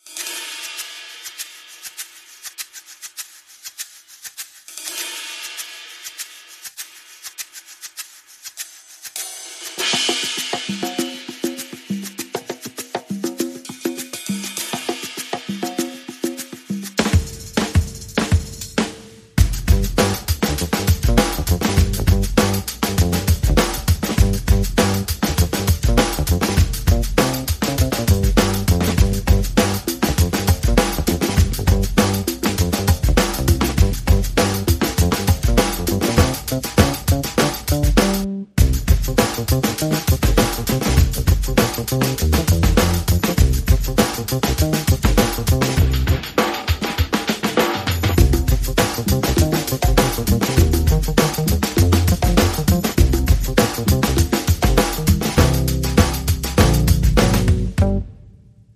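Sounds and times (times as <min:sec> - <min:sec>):
percussion: 0:00.0 - 0:58.1
bass: 0:19.4 - 0:46.4, 0:47.9 - 0:58.2.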